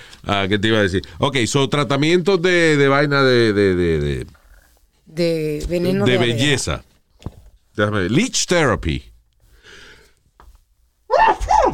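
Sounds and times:
speech: 0:00.2 - 0:04.4, 0:05.1 - 0:09.1
sneeze: 0:11.1 - 0:11.7.

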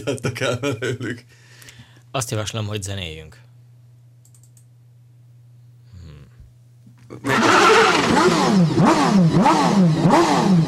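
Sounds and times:
speech: 0:00.0 - 0:01.5, 0:02.1 - 0:03.4, 0:07.1 - 0:10.6
motorcycle engine revving hard: 0:07.2 - 0:10.6.

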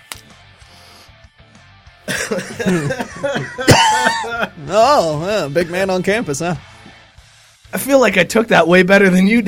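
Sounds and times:
strained wheezy exhale: 0:00.6 - 0:01.2
person coughing harshly: 0:02.1 - 0:04.6
laughter: 0:02.1 - 0:06.0
speech: 0:02.3 - 0:06.7, 0:07.8 - 0:09.4.

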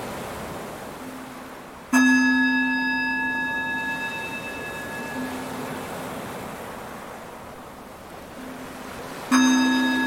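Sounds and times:
Tibetan singing bowl struck: 0:02.0 - 0:05.8, 0:09.3 - 0:10.0.

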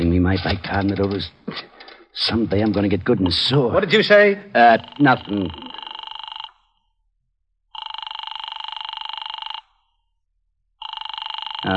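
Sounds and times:
speech: 0:00.3 - 0:05.6
office telephone ringing: 0:04.6 - 0:06.7, 0:07.8 - 0:09.8, 0:10.8 - 0:11.7.

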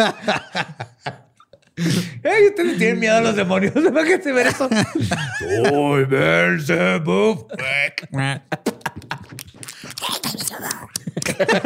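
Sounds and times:
laughter: 0:00.0 - 0:06.6, 0:07.5 - 0:10.0, 0:11.0 - 0:11.6
speech: 0:00.0 - 0:09.3, 0:11.2 - 0:11.6
voice imitating slapping footsteps of a duck-footed demon: 0:08.9 - 0:11.2.

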